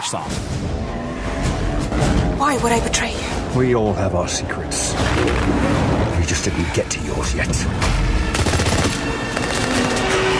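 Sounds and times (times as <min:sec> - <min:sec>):
speech: 0:00.1 - 0:01.0, 0:01.9 - 0:08.4
automatic-weapon gunfire sound effects from a film trailer: 0:08.3 - 0:10.3.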